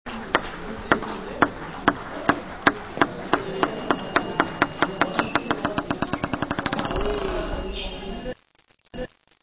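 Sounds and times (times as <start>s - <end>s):
ball beating transition: 0.3s - 7.1s.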